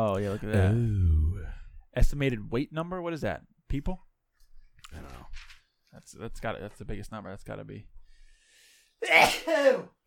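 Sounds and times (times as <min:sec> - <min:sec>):
speech: 0:00.0 - 0:01.2, 0:02.0 - 0:04.1, 0:04.9 - 0:08.0, 0:09.0 - 0:10.0
loud sneeze: 0:09.0 - 0:10.0.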